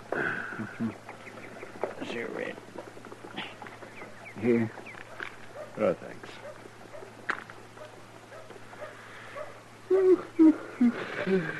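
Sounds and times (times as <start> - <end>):
faint steady hum: 0.0 - 11.5
speech: 4.4 - 4.8, 5.8 - 6.5, 10.8 - 11.5
dog whimpering in short thin whines: 9.4 - 11.5.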